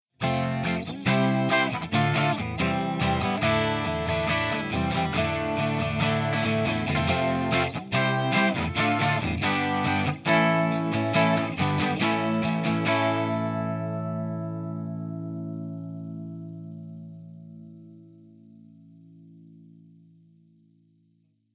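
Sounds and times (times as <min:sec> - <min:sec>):
guitar chords through a pedal: 0:00.2 - 0:20.8.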